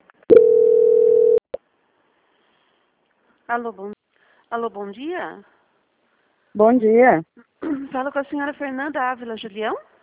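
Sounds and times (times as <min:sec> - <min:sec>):
telephone beep during a call transfer on a bank phone line: 0:00.3 - 0:01.4
speech: 0:03.5 - 0:05.6, 0:06.6 - 0:09.9.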